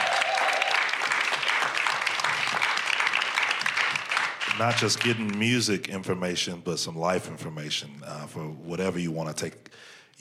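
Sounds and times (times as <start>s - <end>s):
audience applause: 0.0s - 5.4s
speech: 4.6s - 10.1s.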